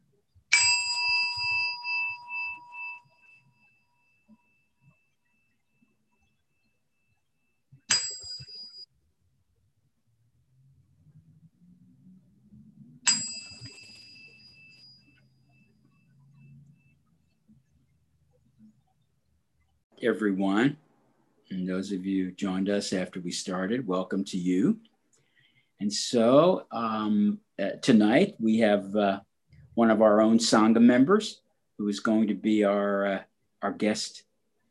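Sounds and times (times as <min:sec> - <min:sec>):
meditation bell struck to begin a meditation: 0:00.5 - 0:05.9, 0:07.8 - 0:08.9, 0:13.0 - 0:17.2
speech: 0:20.0 - 0:20.8, 0:21.5 - 0:24.9, 0:25.8 - 0:34.3.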